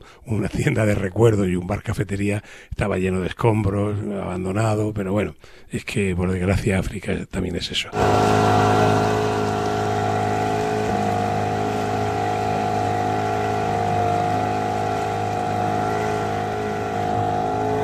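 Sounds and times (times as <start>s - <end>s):
speech: 0.2s - 9.2s
constant tonal whine of a fishing boat engine: 8.0s - 17.8s
fishing boat engine droning on Lake Malawi: 8.0s - 17.8s.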